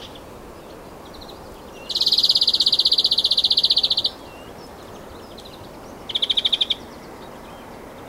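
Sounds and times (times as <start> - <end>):
European greenfinch Chloris chloris calling with a fast rattling trill: 1.0 - 6.9.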